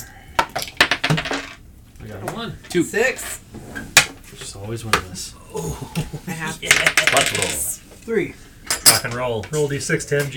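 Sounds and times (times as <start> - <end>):
handful of coins clattering onto a hard table: 0.8 - 1.6, 6.7 - 7.6
speech: 2.1 - 3.9, 4.6 - 10.3.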